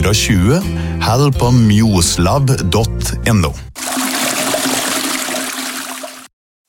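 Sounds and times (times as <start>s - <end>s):
speech: 0.1s - 3.7s
rushing water: 3.8s - 6.3s.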